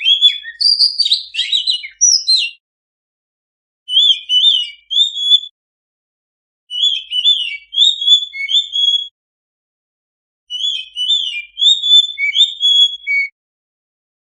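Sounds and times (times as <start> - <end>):
oriental magpie-robin singing vigorously: 0.0 - 2.6, 3.9 - 5.5, 6.7 - 9.1, 10.5 - 13.4.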